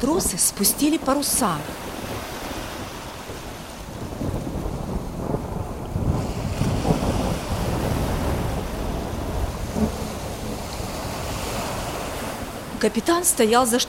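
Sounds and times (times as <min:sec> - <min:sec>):
speech: 0:00.0 - 0:02.0, 0:12.8 - 0:13.8
heavy waves crashing: 0:00.0 - 0:13.8
stormy sea roaring: 0:00.0 - 0:13.8
deep rolling thunder: 0:01.8 - 0:12.7.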